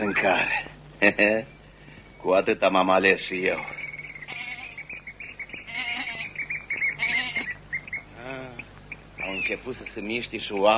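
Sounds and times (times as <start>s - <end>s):
speech: 0.0s - 1.6s, 2.2s - 3.8s, 9.3s - 10.7s
small birds chirping in the early morning: 0.0s - 10.7s
goat led on a rope bleating: 4.2s - 4.9s, 5.6s - 7.6s.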